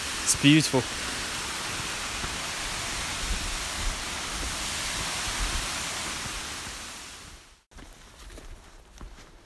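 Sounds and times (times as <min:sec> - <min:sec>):
waterfall cascading down rock steps: 0:00.0 - 0:07.4.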